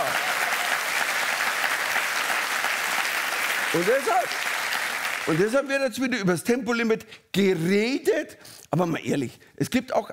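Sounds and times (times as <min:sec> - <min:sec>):
steady audience applause: 0:00.0 - 0:05.6
speech: 0:03.7 - 0:04.5, 0:05.2 - 0:10.1.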